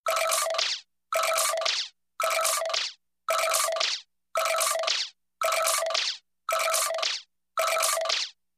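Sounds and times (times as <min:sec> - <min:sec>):
cartoony cartoon gadget machine loop: 0:00.0 - 0:08.4.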